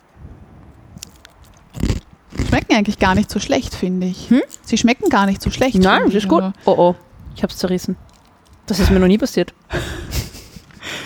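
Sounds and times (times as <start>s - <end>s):
crisp fortune cookie cracking open: 1.0s - 6.4s, 7.0s - 8.9s
speech: 2.6s - 8.0s, 8.7s - 10.0s
laughter: 9.7s - 11.0s.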